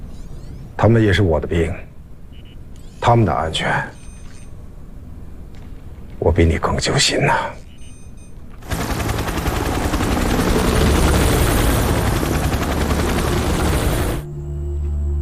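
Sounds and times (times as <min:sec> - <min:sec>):
speech: 0:00.8 - 0:01.9, 0:03.0 - 0:04.0, 0:06.2 - 0:07.6
helicopter flying overhead with rotor blades chopping: 0:08.6 - 0:14.3.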